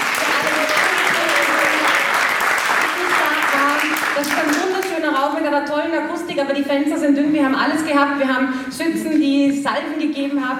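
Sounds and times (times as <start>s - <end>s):
audience applause: 0.0s - 5.0s
speech: 5.2s - 10.5s.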